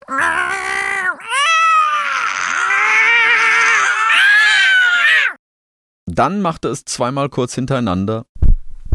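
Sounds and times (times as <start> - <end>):
cats yowling and screeching: 0.0 - 5.4
speech: 6.2 - 8.3.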